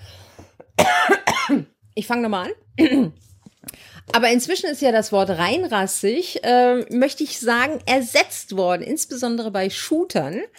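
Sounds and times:
person coughing: 0.6 - 1.7, 2.8 - 3.2
speech: 1.5 - 3.3, 4.1 - 10.5
faint breath: 3.6 - 4.1.

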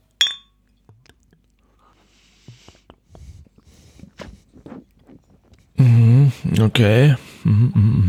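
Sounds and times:
glasses clinking in a toast: 0.2 - 0.6
speech: 6.6 - 7.9.

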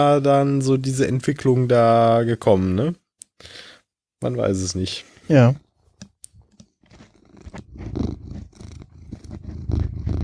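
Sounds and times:
speech: 0.0 - 5.6
cat scratching at a microphone's pop filter: 6.3 - 10.2
cat purring on a person's lap: 6.9 - 10.2.

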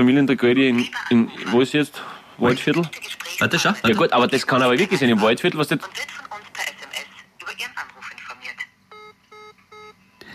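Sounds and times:
speech: 0.0 - 6.2
phone call tone of short electronic beeps on speakerphone: 8.9 - 10.0.

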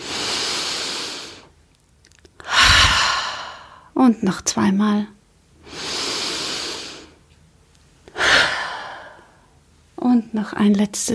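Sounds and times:
person breathing during a cross-legged seated shoulder-raising exercise: 0.0 - 1.5, 2.4 - 3.9, 5.6 - 7.2, 8.1 - 9.6
speech: 4.0 - 5.2, 10.2 - 11.1.

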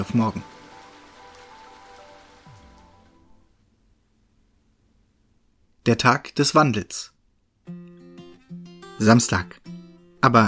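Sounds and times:
speech: 0.0 - 0.5, 5.8 - 7.8, 9.0 - 10.4
heavy rain pouring onto a surface: 0.0 - 3.4.

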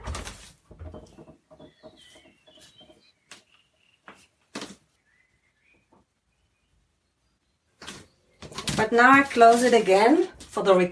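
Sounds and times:
blackbirds singing outdoors: 0.8 - 9.5
speech: 8.8 - 10.9.

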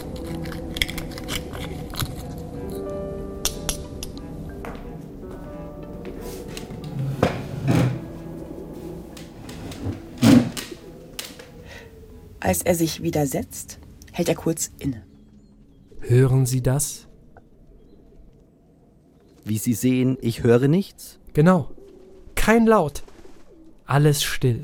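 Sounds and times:
oyster shells cracking open at a buffet: 0.0 - 4.2
faint tonal background: 0.0 - 24.6
speech: 12.5 - 15.1, 16.1 - 17.1, 19.4 - 21.8, 22.4 - 23.1, 23.9 - 24.6.

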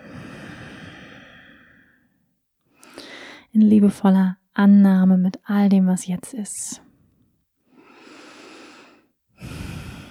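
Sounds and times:
long deep breath in and out during a guided meditation: 0.0 - 2.2, 2.8 - 3.5, 7.7 - 10.0
speech: 3.5 - 6.9.

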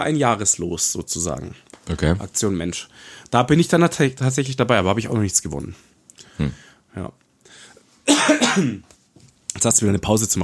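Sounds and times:
speech: 0.0 - 7.2, 8.4 - 8.9, 9.6 - 10.4
rough throat sound: 6.2 - 6.6
single harsh cough: 8.1 - 8.9.

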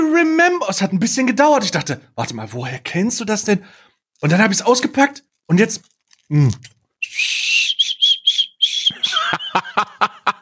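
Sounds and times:
speech: 0.1 - 7.6, 9.3 - 10.4
whistle lollipop being blown: 7.0 - 9.2
laughter: 8.9 - 10.4.

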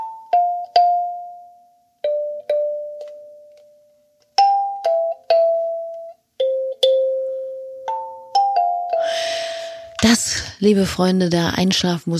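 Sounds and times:
kalimba metal tines plucked in a slow halting tune: 0.0 - 3.5, 4.4 - 9.9
speech: 10.0 - 12.1.

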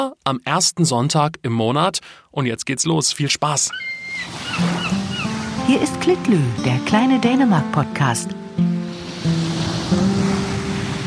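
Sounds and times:
speech: 0.0 - 5.0, 5.7 - 9.4
ocean waves breaking on a beach: 3.7 - 7.5, 8.4 - 11.0.

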